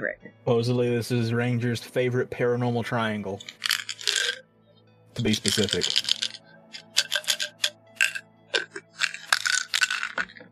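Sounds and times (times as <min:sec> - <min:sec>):
speech: 0:00.0 - 0:03.7, 0:05.2 - 0:06.1
pill bottle rattling in quick shakes: 0:03.4 - 0:04.4, 0:05.2 - 0:10.5.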